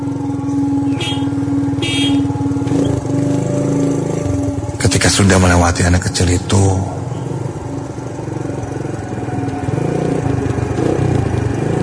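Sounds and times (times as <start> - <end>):
motorcycle engine rumbling: 0.0 - 11.8
motorcycle horn honking: 0.8 - 2.8
speech: 5.2 - 7.0.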